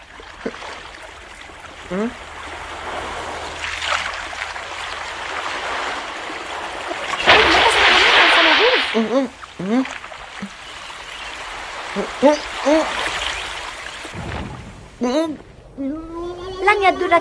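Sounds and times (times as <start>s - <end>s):
sea water sloshing and splashing around a small boat at sea: 0.0s - 15.0s
speech: 1.9s - 2.3s, 9.0s - 10.5s, 12.0s - 13.0s, 15.0s - 16.0s, 16.7s - 17.1s
loud splash: 2.4s - 15.6s.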